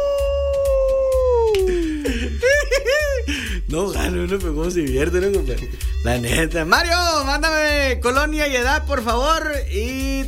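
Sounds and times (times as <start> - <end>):
person imitating a wolf howl in a radio office: 0.0 - 1.8
laughter: 1.7 - 3.4
speech: 3.7 - 10.2.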